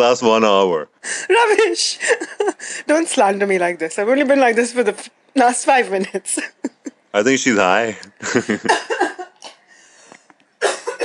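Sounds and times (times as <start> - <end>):
speech: 0.0 - 9.0
woman's faint breath: 2.6 - 2.9, 9.6 - 10.3
laughter: 8.1 - 9.4
woman coughing in harsh hacks: 10.6 - 11.0.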